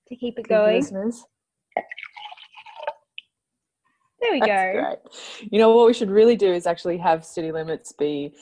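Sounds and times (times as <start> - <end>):
speech: 0.1 - 2.2, 4.2 - 8.4
small drip of tea: 1.8 - 3.2
tea pouring into a cup: 1.9 - 3.1.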